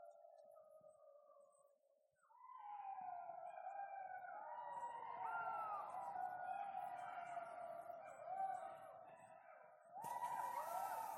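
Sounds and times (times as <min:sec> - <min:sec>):
golden jackals Canis aureus howling in chorus: 0:02.4 - 0:11.1.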